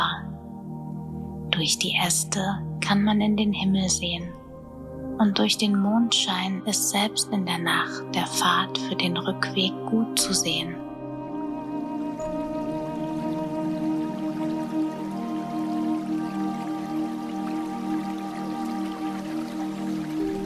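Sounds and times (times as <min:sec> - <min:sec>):
speech: 0:01.6 - 0:04.4, 0:05.2 - 0:10.8
small forest brook trickling at dusk: 0:11.5 - 0:20.4.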